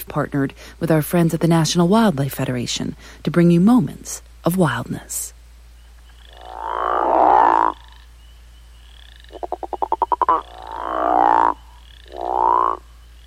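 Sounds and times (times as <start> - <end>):
speech: 0.0 - 5.4
male crawfish frog guttural snoring breeding calls: 6.1 - 8.1, 8.8 - 12.9.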